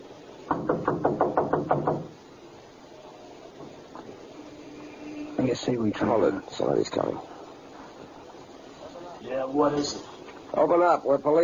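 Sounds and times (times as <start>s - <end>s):
police officers knocking on a door: 0.5s - 2.2s
speech: 5.5s - 7.4s, 9.4s - 11.4s.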